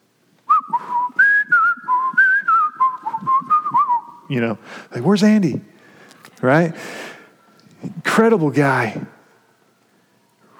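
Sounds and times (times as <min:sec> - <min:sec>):
person whistling a lively melodic tune: 0:00.5 - 0:04.3
speech: 0:04.3 - 0:05.7, 0:06.4 - 0:07.1, 0:08.2 - 0:09.2.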